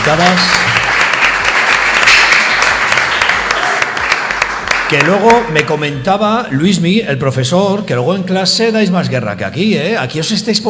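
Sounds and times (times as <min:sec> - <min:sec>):
crowd applause: 0:00.0 - 0:05.6
speech: 0:00.1 - 0:00.6, 0:04.9 - 0:10.6.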